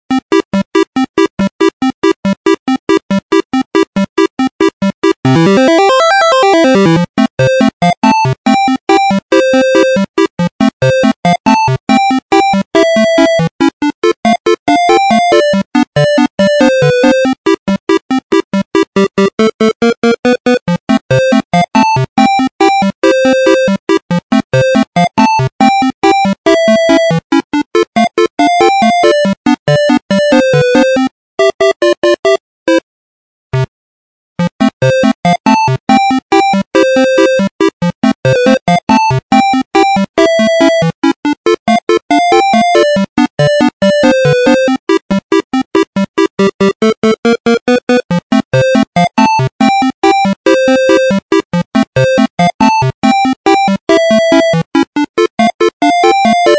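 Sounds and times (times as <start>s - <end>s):
chiptune music: 0.1s - 32.8s, 34.4s - 56.5s.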